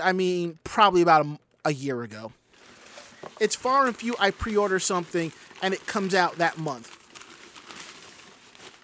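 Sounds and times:
speech: 0.0s - 2.4s, 3.3s - 7.0s
brown paper packaging being unwrapped, crinkling and rustling: 2.5s - 8.8s.

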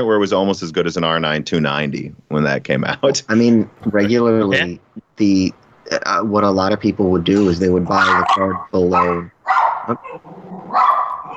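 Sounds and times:
speech: 0.0s - 10.5s
laughter: 2.8s - 4.7s
dog barking: 8.0s - 11.3s.

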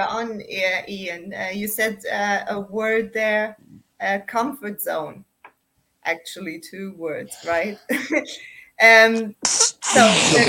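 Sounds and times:
speech: 0.0s - 5.3s, 6.0s - 10.4s
sneeze: 9.5s - 10.4s.

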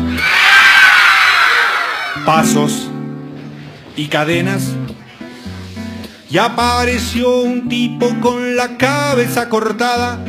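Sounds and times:
people screaming in an abandoned house: 0.0s - 2.4s
speech: 2.3s - 3.0s, 4.0s - 4.8s, 6.3s - 10.2s.

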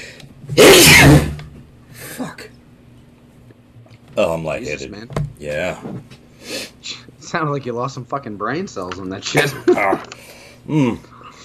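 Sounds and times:
loud explosive sneeze: 0.6s - 1.4s
speech: 4.2s - 6.2s, 7.3s - 11.1s
quiet breathing: 10.2s - 11.4s.

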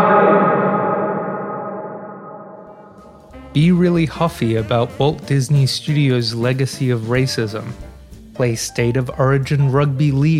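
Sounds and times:
voice tail in a cavernous space: 0.0s - 5.4s
speech: 3.6s - 10.3s.

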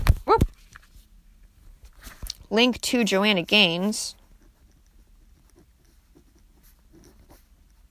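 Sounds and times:
faint steady hum: 0.0s - 7.8s
speech: 2.5s - 4.2s
pen scratching on paper: 4.2s - 7.8s.

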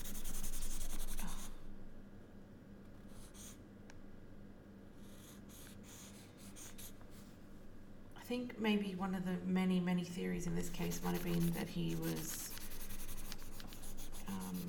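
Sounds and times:
pencil sketching on paper: 0.0s - 1.5s, 5.0s - 7.0s, 10.6s - 14.6s
speech: 8.3s - 12.4s.

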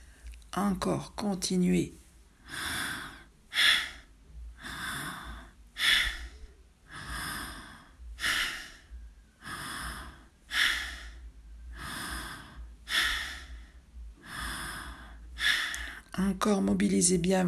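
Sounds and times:
speech: 0.6s - 2.8s, 16.8s - 17.4s
forceful bellows breathing through both nostrils in a breathing exercise: 2.4s - 16.1s.

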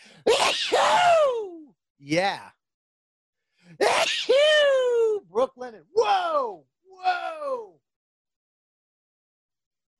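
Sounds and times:
person sneezing: 0.0s - 1.1s, 3.7s - 4.5s
speech: 0.6s - 1.1s, 2.0s - 2.5s, 3.8s - 7.7s.

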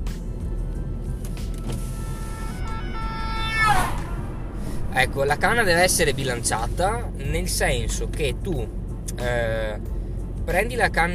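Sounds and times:
steady rumble of street traffic: 0.0s - 11.1s
ambulance siren passing by: 1.6s - 4.6s
speech: 5.0s - 11.1s.

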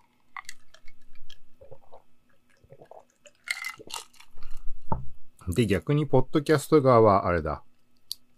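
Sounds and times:
person drinking Dragon Boost energy drink from a can: 0.3s - 4.8s
speech: 5.5s - 7.7s.

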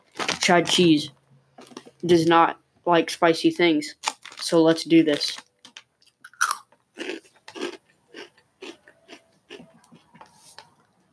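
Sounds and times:
speech: 0.5s - 1.2s, 2.0s - 5.4s
crunchy hot Cheetos snacks being chewed: 4.0s - 4.5s, 5.1s - 10.2s.

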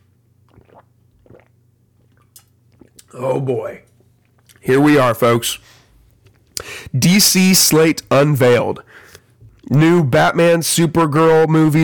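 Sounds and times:
low steady hum: 0.0s - 11.8s
wet gulping swallows of drinking water: 0.4s - 3.2s
speech: 3.1s - 3.9s, 4.6s - 5.7s, 6.9s - 9.0s, 9.7s - 11.8s.

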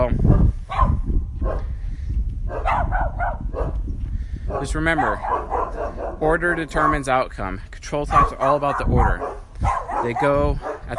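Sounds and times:
several dogs barking and yipping: 0.3s - 1.7s, 2.5s - 3.8s, 4.5s - 7.2s, 8.0s - 10.9s
speech: 4.6s - 9.4s, 10.0s - 10.9s.

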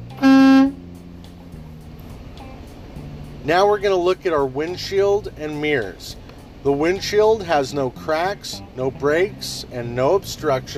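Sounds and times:
low idling rumble: 0.0s - 10.7s
brassy truck horn blast: 0.1s - 1.0s
speech: 3.4s - 10.7s.

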